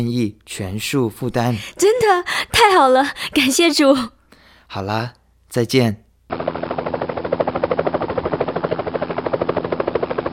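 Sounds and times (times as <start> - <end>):
speech: 0.0 - 6.6
small aircraft engine droning: 6.3 - 10.3.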